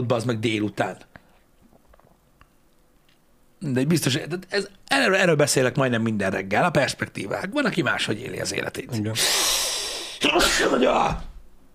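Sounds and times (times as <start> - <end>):
speech: 0.0 - 1.1, 3.6 - 9.6, 10.2 - 11.3
breathy hiss: 9.0 - 10.7
person sneezing: 9.2 - 10.9.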